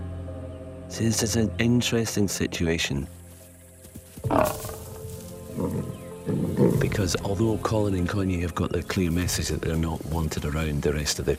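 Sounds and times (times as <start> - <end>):
speech: 0.9 - 3.2, 7.0 - 11.3
lions snarling and growling while play-fighting: 4.2 - 7.7.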